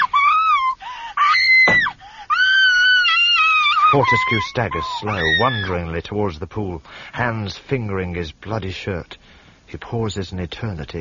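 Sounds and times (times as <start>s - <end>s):
girl screaming: 0.0s - 5.7s
speech: 3.9s - 11.0s.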